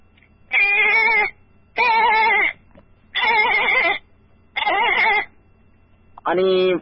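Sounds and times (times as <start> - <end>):
goat bleating: 0.5 - 2.6, 3.2 - 4.0, 4.6 - 5.3
speech: 6.3 - 6.8.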